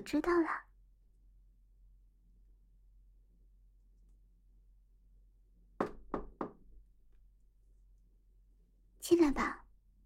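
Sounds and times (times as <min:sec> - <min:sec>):
speech: 0:00.0 - 0:00.6
firm knocking on a door: 0:05.8 - 0:06.8.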